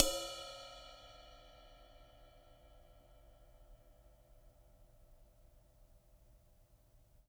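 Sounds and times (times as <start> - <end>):
acoustic ride cymbal: 0.0 - 4.0.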